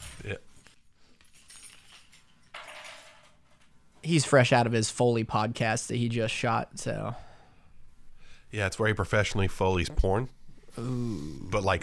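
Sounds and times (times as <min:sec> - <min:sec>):
keys clinking and jangling as they are set down on a table: 0:00.0 - 0:03.8
speech: 0:00.2 - 0:00.5, 0:04.0 - 0:07.3, 0:08.5 - 0:11.8.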